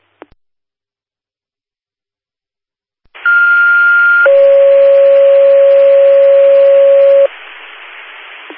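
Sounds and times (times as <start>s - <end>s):
two-tone fire dispatch radio paging alert for a medical alarm activation: 3.3s - 7.3s
hiss of radio static: 4.3s - 8.5s.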